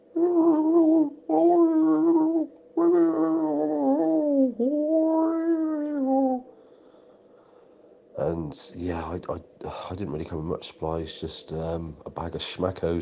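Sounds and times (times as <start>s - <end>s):
person imitating a Basenji dog's whimper: 0.1s - 6.5s
speech: 8.5s - 13.0s.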